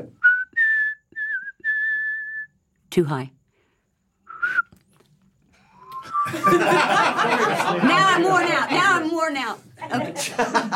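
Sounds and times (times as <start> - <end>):
person whistling a tune: 0.2 - 2.6, 4.3 - 4.8, 5.8 - 6.6
speech: 2.9 - 3.4, 6.4 - 10.7
laughter: 6.0 - 10.7.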